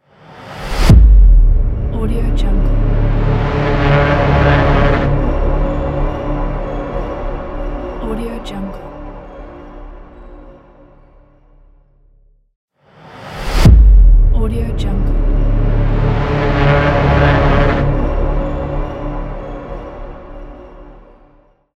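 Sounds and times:
cinematic transition boom: 0.5 - 8.0, 13.2 - 19.4.

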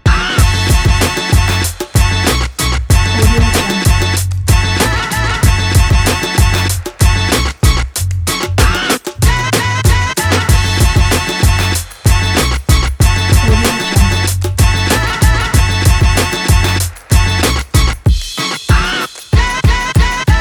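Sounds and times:
old school hip hop ident: 0.1 - 20.3.

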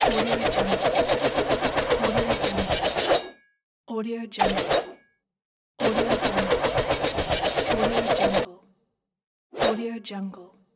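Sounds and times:
sword spinning: 0.0 - 3.3, 4.4 - 5.0, 5.8 - 8.5, 9.6 - 9.8.

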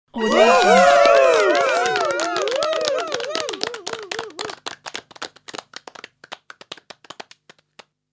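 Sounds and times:
small group screaming: 0.1 - 4.5
small group applause: 0.2 - 7.9.

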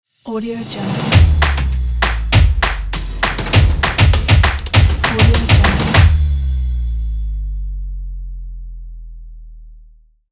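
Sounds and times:
percussive logo jingle: 1.1 - 6.8.

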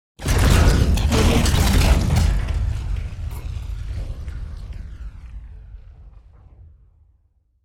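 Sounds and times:
concrete debris falling down: 0.2 - 4.6.

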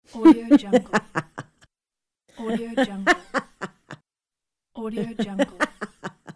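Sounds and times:
woman laughing: 0.1 - 1.7, 2.4 - 4.0, 4.9 - 6.3.

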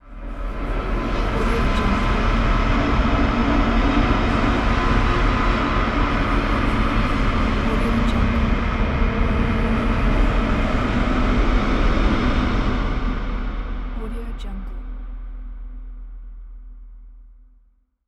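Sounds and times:
dark ambient horror music: 0.0 - 17.2.

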